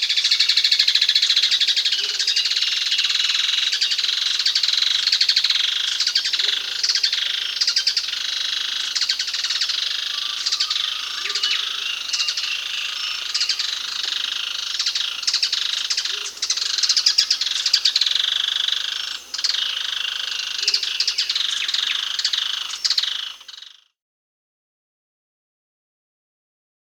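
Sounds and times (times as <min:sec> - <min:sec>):
Plain Softtail Thripophaga fusciceps calling in Peru: 0:00.2 - 0:23.6.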